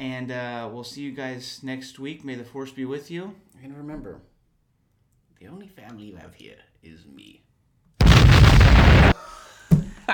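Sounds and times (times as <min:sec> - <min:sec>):
speech: 0:00.0 - 0:04.3, 0:05.4 - 0:07.5
cannon blast sound effect from a soundboard: 0:08.0 - 0:09.2.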